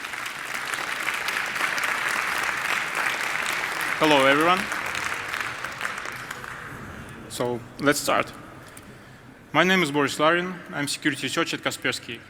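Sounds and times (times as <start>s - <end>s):
audience applause: 0.0s - 6.9s
speech: 4.0s - 4.8s, 7.4s - 8.4s, 9.5s - 12.2s.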